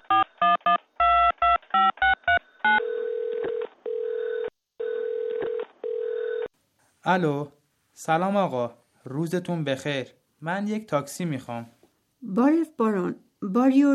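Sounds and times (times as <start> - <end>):
telephone ringing tones on the line: 0.1 - 6.5
speech: 7.1 - 13.9.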